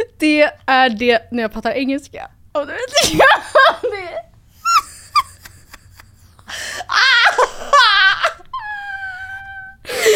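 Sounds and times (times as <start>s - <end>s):
speech: 0.2s - 4.3s
person wailing and sobbing theatrically: 4.6s - 10.1s.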